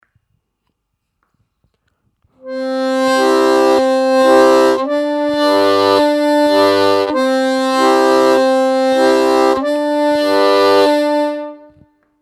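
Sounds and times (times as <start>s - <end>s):
harmonica playing a single rhythm on octaves: 2.4s - 11.8s.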